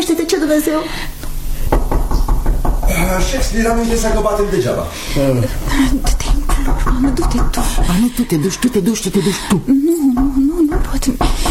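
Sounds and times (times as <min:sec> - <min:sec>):
faint noise: 0:00.0 - 0:11.4
speech: 0:00.5 - 0:01.1, 0:03.0 - 0:11.4
firm knocking on a door: 0:01.6 - 0:04.8, 0:05.8 - 0:09.1, 0:10.1 - 0:11.4.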